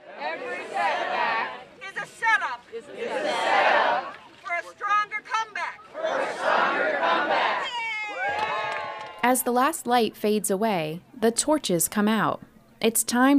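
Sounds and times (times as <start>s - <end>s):
large outdoor crowd roaring and cheering: 0.0s - 4.7s, 5.8s - 9.3s
speech: 9.3s - 13.3s.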